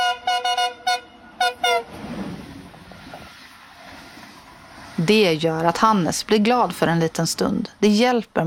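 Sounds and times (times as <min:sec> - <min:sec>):
train horn blasts: 0:00.0 - 0:02.2
train rolling past: 0:00.0 - 0:07.8
speech: 0:05.0 - 0:08.4.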